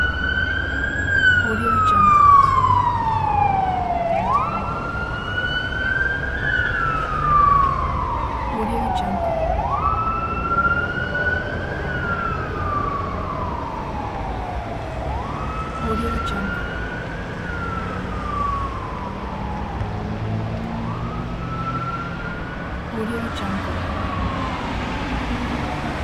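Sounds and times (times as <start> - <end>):
ambulance siren: 0.0 - 26.0
traffic ambience: 0.0 - 26.0.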